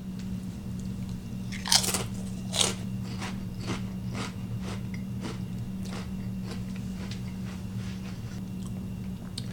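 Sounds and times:
low constant hum: 0:00.0 - 0:09.5
crunching and chewing Takis Waves potato chips: 0:01.5 - 0:07.6.

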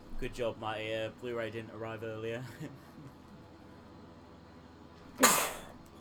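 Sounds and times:
speech: 0:00.2 - 0:03.0
sneeze: 0:05.2 - 0:05.7.

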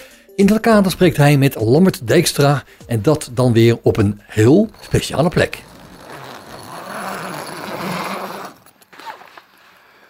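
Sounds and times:
speech: 0:00.4 - 0:05.7
awning tent zipper pulled: 0:04.4 - 0:10.0
tent fabric rustling and scraping: 0:04.4 - 0:10.0.

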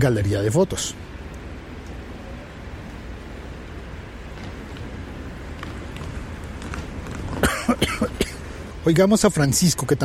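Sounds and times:
speech: 0:00.0 - 0:01.2, 0:08.8 - 0:10.0
low noise: 0:00.0 - 0:10.0
harsh coughing fit: 0:07.3 - 0:08.6.

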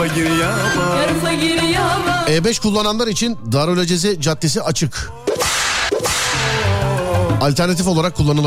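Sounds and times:
speech: 0:00.1 - 0:05.4, 0:07.4 - 0:08.4
whip cracking: 0:05.3 - 0:06.6.

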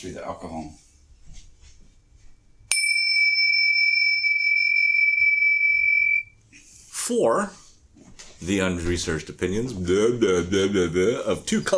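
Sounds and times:
speech: 0:00.0 - 0:01.5, 0:07.1 - 0:07.6, 0:08.4 - 0:11.7
faint low noise: 0:00.0 - 0:11.7
single bright bell struck and ringing: 0:02.7 - 0:06.4.

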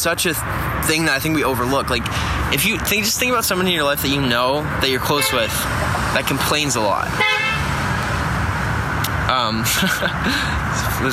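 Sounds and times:
speech: 0:00.0 - 0:07.4, 0:09.3 - 0:11.1
road and traffic rumble: 0:00.0 - 0:11.1
car horn honking: 0:05.0 - 0:05.7, 0:07.1 - 0:07.8
laughter: 0:09.6 - 0:10.8.

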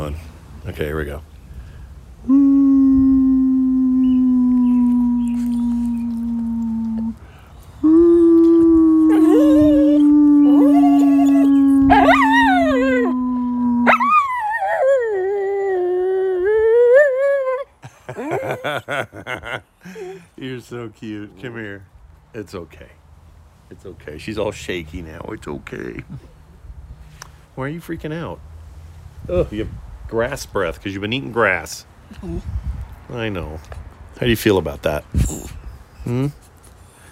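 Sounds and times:
speech: 0:00.1 - 0:01.3, 0:20.5 - 0:23.0, 0:23.7 - 0:26.3, 0:27.6 - 0:28.5, 0:29.3 - 0:32.5, 0:33.1 - 0:36.4
person holding long steady howling notes: 0:02.2 - 0:07.2, 0:07.8 - 0:18.6
female dog howling: 0:03.0 - 0:07.2, 0:07.9 - 0:17.6.

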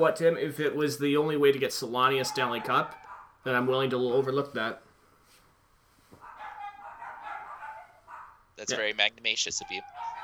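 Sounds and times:
speech: 0:00.0 - 0:04.8, 0:08.6 - 0:10.2
dogs barking in high-pitched yips: 0:01.2 - 0:04.8, 0:06.2 - 0:10.2.

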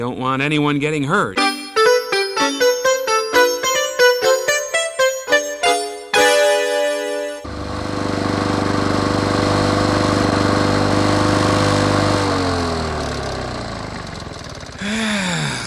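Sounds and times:
speech: 0:00.0 - 0:01.5
quick rhythmic tonal notes: 0:01.4 - 0:07.5
lawn mower engine droning: 0:07.4 - 0:15.6.

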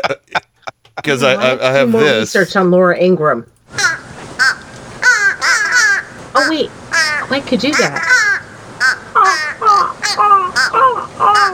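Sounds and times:
laughter: 0:00.0 - 0:02.5
speech: 0:00.0 - 0:03.8, 0:06.4 - 0:08.2
person imitating crow caws: 0:03.8 - 0:11.5.

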